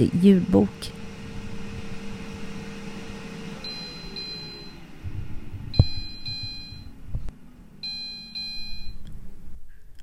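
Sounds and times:
speech: 0:00.0 - 0:01.0
low humming of the running air fryer: 0:00.0 - 0:10.0
air fryer finished-cooking alert beeps: 0:02.0 - 0:05.0, 0:05.7 - 0:07.0, 0:07.8 - 0:09.1.

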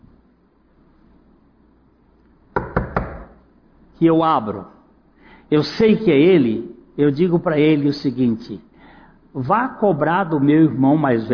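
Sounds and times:
firm knocks on a wooden door: 0:02.6 - 0:03.4
speech: 0:04.0 - 0:04.8, 0:05.5 - 0:08.7, 0:09.3 - 0:11.3.

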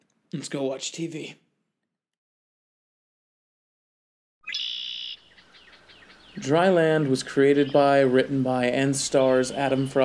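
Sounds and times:
speech: 0:00.3 - 0:01.4, 0:06.4 - 0:10.0
bird chirping as it is caught: 0:04.4 - 0:10.0.

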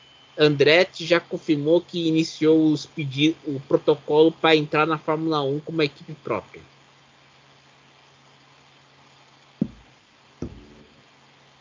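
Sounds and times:
faint hiss: 0:00.0 - 0:11.6
speech: 0:00.4 - 0:06.7
knocking on a table: 0:09.6 - 0:10.9.

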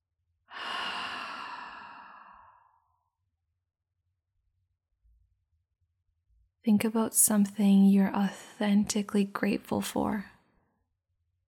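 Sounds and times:
slow deep breath out: 0:00.5 - 0:03.0
speech: 0:06.6 - 0:10.3.

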